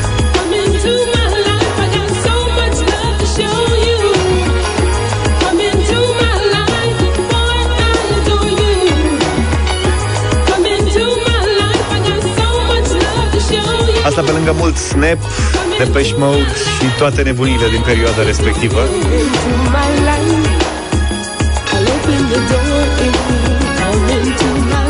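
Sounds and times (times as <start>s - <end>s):
1990s pop song: 0.0s - 24.8s
thumping bass beat: 0.0s - 24.8s
speech: 14.6s - 20.5s, 22.2s - 22.6s.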